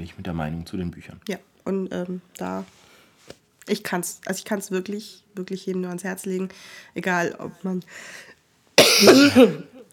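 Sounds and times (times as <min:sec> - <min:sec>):
speech: 0:00.0 - 0:08.3, 0:08.9 - 0:09.7
person coughing harshly: 0:08.8 - 0:09.9.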